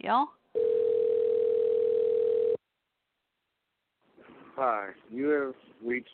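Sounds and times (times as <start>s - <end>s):
speech: 0.0s - 0.4s, 4.6s - 6.1s
electronic ringback tone of an outgoing phone call: 0.6s - 2.6s.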